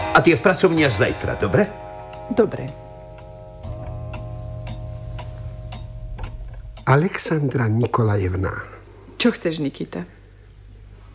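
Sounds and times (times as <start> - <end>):
just-repaired clock ticking: 0.0 - 8.4
speech: 0.2 - 2.8, 6.9 - 10.2
low constant hum: 1.2 - 11.1.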